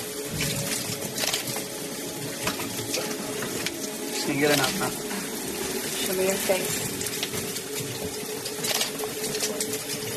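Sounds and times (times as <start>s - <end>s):
shower water running: 0.0s - 10.1s
speech: 4.3s - 5.1s, 6.1s - 7.0s.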